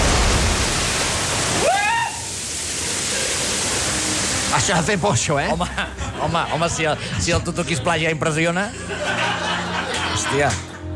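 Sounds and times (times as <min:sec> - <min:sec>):
huge water splash from falling steel funnel: 0:00.0 - 0:05.0
brief rising and falling wail: 0:01.5 - 0:02.4
speech: 0:04.6 - 0:09.4, 0:10.2 - 0:10.7
laughter: 0:05.4 - 0:10.9.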